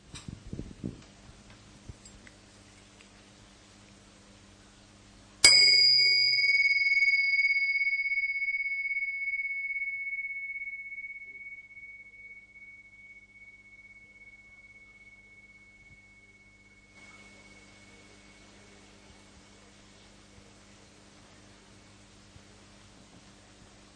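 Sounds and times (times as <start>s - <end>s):
meditation gong struck and ringing: 5.4s - 19.7s.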